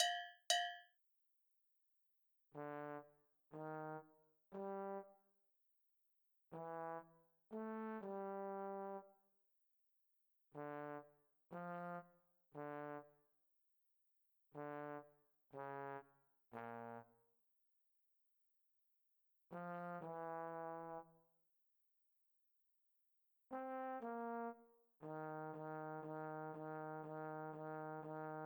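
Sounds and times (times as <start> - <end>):
classical trombone: 2.6 - 5.0, 6.6 - 9.0, 10.6 - 12.0, 12.6 - 13.2, 14.6 - 16.0, 16.6 - 17.1, 19.6 - 21.1, 23.5 - 28.4.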